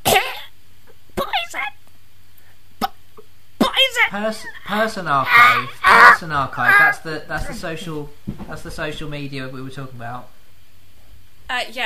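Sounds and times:
person coughing and choking: 0.0 - 0.5, 1.2 - 1.5, 3.6 - 3.9
speech: 4.1 - 10.4, 11.5 - 11.8.

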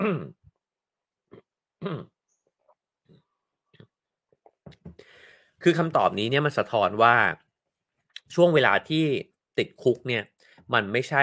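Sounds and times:
speech: 0.0 - 0.4, 1.8 - 2.1, 5.6 - 7.4, 8.3 - 11.2
person gulping water: 1.3 - 4.0.

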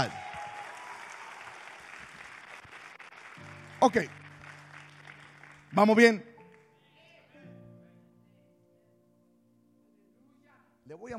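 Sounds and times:
speech: 0.0 - 0.2, 3.8 - 4.2, 5.7 - 6.3, 10.9 - 11.1
audience in a church applauding: 0.0 - 6.8.

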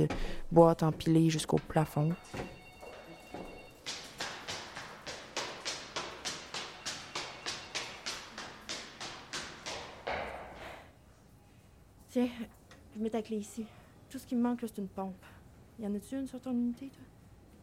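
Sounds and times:
speech: 0.0 - 2.6, 13.1 - 17.2
quick footsteps hurrying down basement stairs: 0.0 - 11.0
brief faint electronic beeping tone: 1.5 - 3.9, 6.0 - 8.5.

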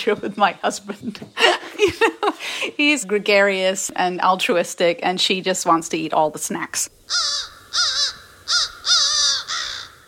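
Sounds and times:
speech: 0.0 - 8.6
laughter: 1.4 - 2.8
two crows cawing harshly: 7.1 - 10.0.

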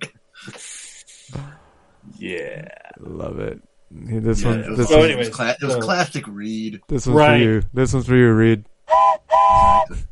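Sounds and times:
speech: 2.2 - 8.7
train whistle blast: 8.9 - 9.9.

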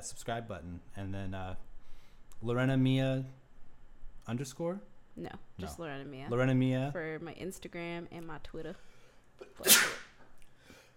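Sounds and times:
speech: 0.0 - 1.7, 2.4 - 3.4, 4.2 - 10.0
sneeze: 9.4 - 10.2.

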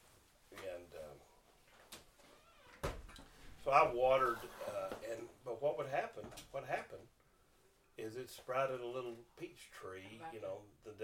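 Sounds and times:
door shutting with a sharp knock: 2.4 - 3.4
speech: 3.7 - 7.2, 8.0 - 11.0.

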